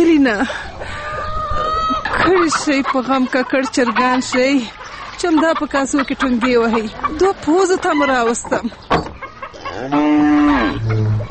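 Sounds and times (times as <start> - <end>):
speech: 0.0 - 0.7, 2.1 - 9.0, 9.8 - 11.1
cow mooing: 9.5 - 11.2.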